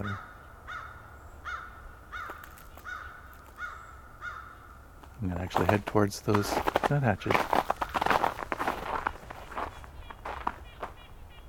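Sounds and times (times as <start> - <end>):
crows cawing: 0.0 - 5.2, 7.4 - 11.4
speech: 5.2 - 7.6.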